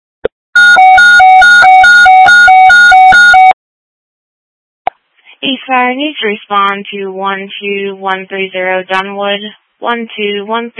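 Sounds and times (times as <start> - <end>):
fire dispatch alert tones: 0.6 - 3.5
speech: 5.7 - 10.7.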